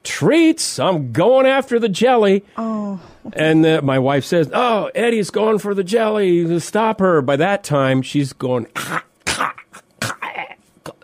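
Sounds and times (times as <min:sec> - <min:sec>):
speech: 0:00.2 - 0:09.1
person vocally imitating an old dog gagging and coughing: 0:08.7 - 0:11.0.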